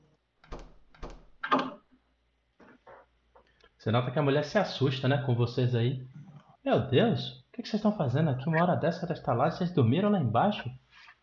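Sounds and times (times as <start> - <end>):
door thumping and rattling as it is opened by a group of people: 0.4 - 1.4
door clicking and creaking as it moves: 0.4 - 1.7
speech: 3.8 - 10.8.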